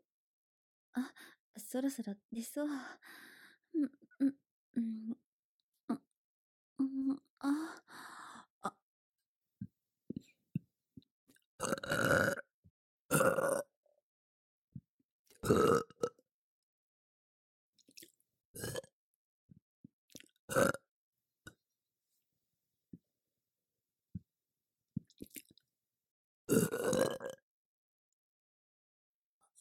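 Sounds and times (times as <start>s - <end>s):
speech: 0.9s - 5.2s, 6.8s - 8.8s, 11.6s - 12.4s, 20.5s - 20.7s
loud burps: 11.6s - 12.5s, 13.1s - 13.7s, 15.5s - 16.1s, 18.5s - 18.9s, 20.5s - 20.8s, 26.5s - 27.4s.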